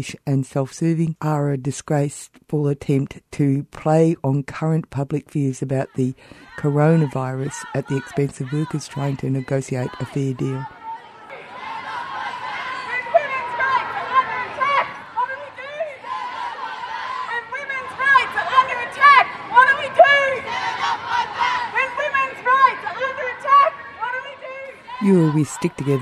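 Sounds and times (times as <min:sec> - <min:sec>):
speech: 0:00.0 - 0:10.8, 0:25.0 - 0:26.0
crowd chanting at a women's day march in Melbourne: 0:06.2 - 0:26.0.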